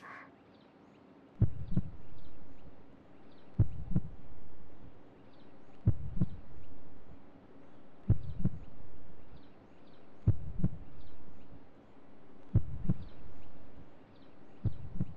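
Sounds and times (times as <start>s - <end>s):
human heartbeat with deep beats: 1.4s - 2.7s, 3.4s - 5.0s, 5.8s - 7.2s, 8.0s - 9.5s, 10.2s - 11.6s, 12.5s - 13.9s, 14.5s - 15.1s.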